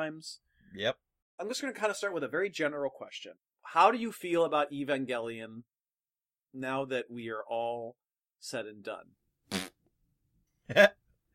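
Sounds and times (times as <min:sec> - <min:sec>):
speech: 0:00.0 - 0:05.7, 0:06.5 - 0:09.7, 0:10.7 - 0:11.0
mouth raspberry imitating a fart: 0:09.5 - 0:09.8.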